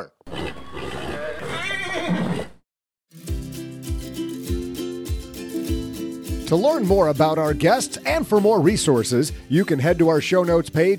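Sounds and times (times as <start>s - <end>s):
horse whinnying: 0.0s - 2.6s
upbeat music with a steady thumping beat: 3.1s - 10.9s
speech: 6.5s - 10.9s.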